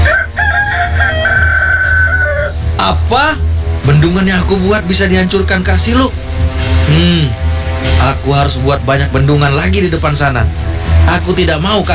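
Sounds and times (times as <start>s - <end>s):
rooster crowing: 0.0s - 2.7s
speech: 2.8s - 6.2s, 6.9s - 11.9s.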